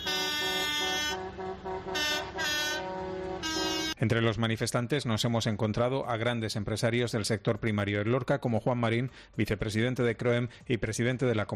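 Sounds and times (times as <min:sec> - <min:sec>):
air horns from a convoy of tractors at a farmers' protest in Lorca Spain: 0:00.0 - 0:04.0
rumbling tractor and agricultural vehicle engines: 0:00.0 - 0:04.0
speech: 0:04.0 - 0:11.5.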